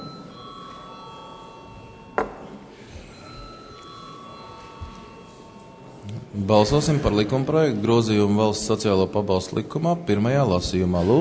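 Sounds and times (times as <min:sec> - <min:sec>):
electric bell ringing in the Latvian parliament before a vote: 0:00.0 - 0:07.2
faint murmur: 0:00.0 - 0:11.2
speech: 0:06.4 - 0:11.2.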